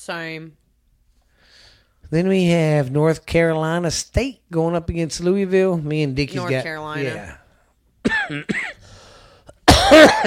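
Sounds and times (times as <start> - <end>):
speech: 0.0 - 0.6, 2.1 - 7.4, 8.3 - 8.8, 9.9 - 10.2
person coughing harshly: 8.0 - 8.8, 9.5 - 10.2.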